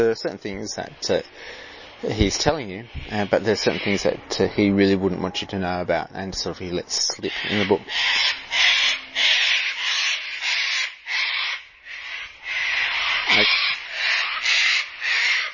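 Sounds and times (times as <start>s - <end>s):
speech: 0.0s - 8.7s
sulphur-crested cockatoos screeching: 1.6s - 5.5s, 7.2s - 15.5s.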